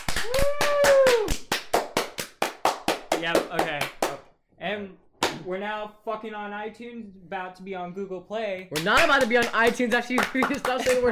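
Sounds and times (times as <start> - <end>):
hands clapping: 0.0 - 4.3, 5.2 - 5.5, 8.6 - 11.0
rising-and-falling vocal whoop: 0.2 - 1.4
speech: 4.8 - 11.0.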